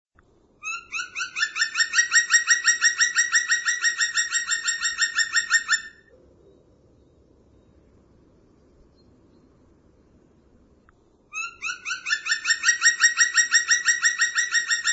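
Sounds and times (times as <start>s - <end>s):
bird trilling rasping chirps: 0.6s - 6.1s, 11.3s - 14.9s.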